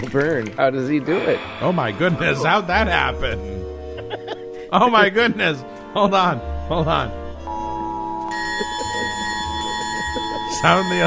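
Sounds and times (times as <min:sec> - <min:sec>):
speech: 0:00.0 - 0:03.6, 0:04.7 - 0:07.2, 0:10.5 - 0:11.0
laughter: 0:02.0 - 0:04.8, 0:08.4 - 0:11.0
alarm bell ringing: 0:07.5 - 0:11.0.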